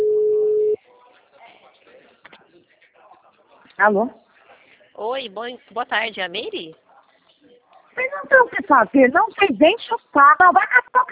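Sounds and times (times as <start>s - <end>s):
telephone ringback tone while calling a mobile phone: 0.0s - 0.8s
speech: 3.8s - 4.2s, 5.0s - 6.8s, 8.3s - 11.1s.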